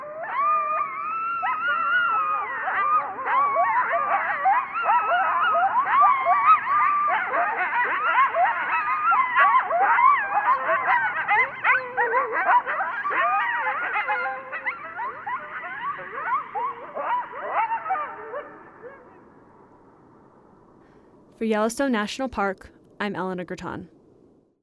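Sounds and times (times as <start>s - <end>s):
coyotes yipping in a group chorus: 0.0s - 19.4s
speech: 21.5s - 24.0s.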